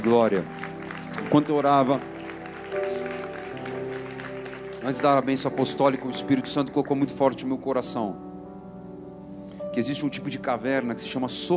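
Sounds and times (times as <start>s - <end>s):
speech: 0.0s - 2.1s, 4.8s - 8.3s, 9.8s - 11.5s
congregation applauding: 0.0s - 7.5s
sustained keyboard chords: 0.0s - 11.5s.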